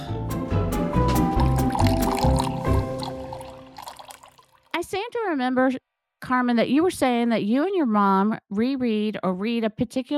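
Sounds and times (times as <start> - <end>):
drink pouring into a glass: 1.0 - 4.7
speech: 4.9 - 10.1.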